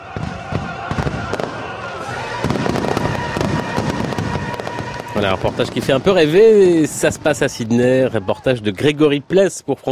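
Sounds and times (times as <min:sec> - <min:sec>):
fireworks from a nightly display in Sydney: 0:00.0 - 0:07.9
speech: 0:05.2 - 0:09.9.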